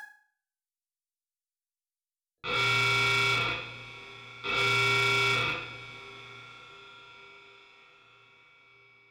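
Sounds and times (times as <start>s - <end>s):
red alert alarm: 2.5s - 6.7s.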